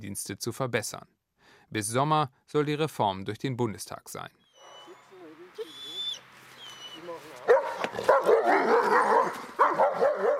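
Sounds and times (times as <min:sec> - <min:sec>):
speech: 0:00.0 - 0:04.4
guard dogs barking at nightfall: 0:06.6 - 0:10.3.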